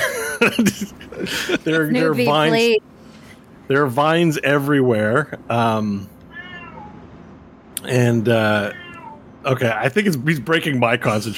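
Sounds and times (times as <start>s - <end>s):
laughter: 0.0s - 2.6s
speech: 0.4s - 3.0s, 3.7s - 6.1s, 7.8s - 8.8s, 9.4s - 11.3s
male cat meowing: 6.3s - 7.0s, 8.4s - 9.4s.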